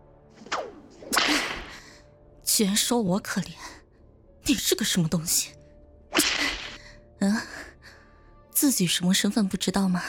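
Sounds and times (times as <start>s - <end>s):
barbed whip lashes cracking: 0.5s - 1.7s, 6.2s - 6.8s
speech: 2.6s - 3.8s, 4.5s - 5.6s, 7.2s - 7.6s, 8.6s - 10.0s.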